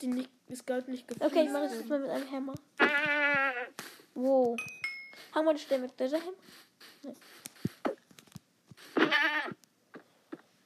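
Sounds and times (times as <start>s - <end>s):
speech: 0.0s - 3.4s, 4.2s - 8.0s
goats bleating in a video game: 2.8s - 3.8s, 8.9s - 9.6s.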